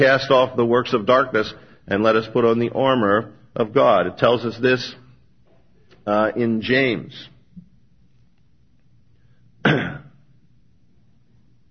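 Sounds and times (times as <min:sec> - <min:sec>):
speech: 0:00.0 - 0:05.0, 0:06.0 - 0:07.3
person clearing throat during a sermon's Bible reading: 0:09.6 - 0:10.3.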